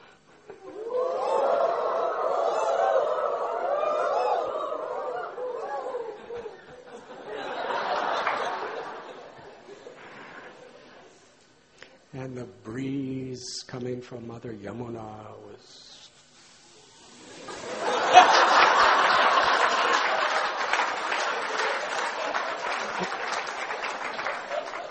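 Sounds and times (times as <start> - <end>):
people laughing: 0.4 - 11.1, 17.2 - 24.8
crowd imitating cooing night birds: 0.5 - 9.0, 17.3 - 24.8
speech: 12.4 - 15.7.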